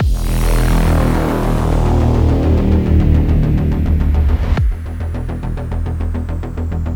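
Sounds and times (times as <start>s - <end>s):
ending sting: 0.0s - 6.8s.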